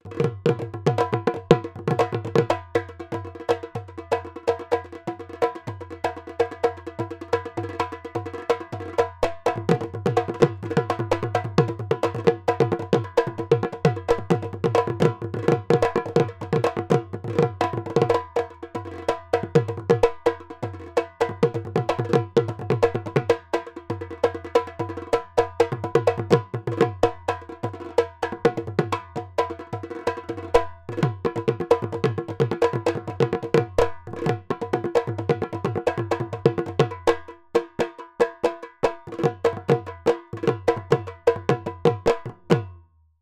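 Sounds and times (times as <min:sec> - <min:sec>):
Assamese folk dhol drum loop: 0:00.0 - 0:42.8.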